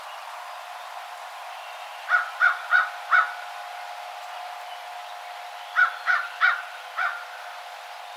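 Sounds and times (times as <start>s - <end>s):
American crow calling with rough caws: 2.1s - 3.4s, 5.8s - 7.2s.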